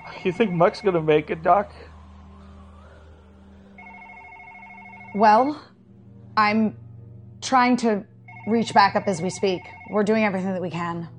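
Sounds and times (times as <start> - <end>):
low hum: 0.0 - 10.4
speech: 0.1 - 1.9, 5.2 - 5.7, 6.4 - 6.8, 7.4 - 11.1
telephone ringing with a warbling electronic tone: 3.8 - 5.7, 8.3 - 10.4.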